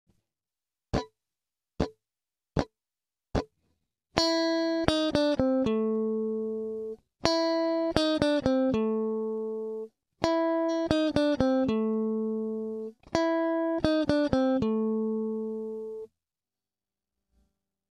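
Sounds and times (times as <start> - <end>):
blues guitar lick: 4.2 - 16.1.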